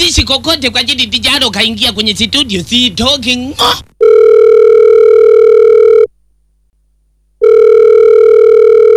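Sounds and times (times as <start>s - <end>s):
speech: 0.1s - 4.5s
electronic telephone ring for an incoming call: 4.0s - 6.1s, 7.4s - 8.9s.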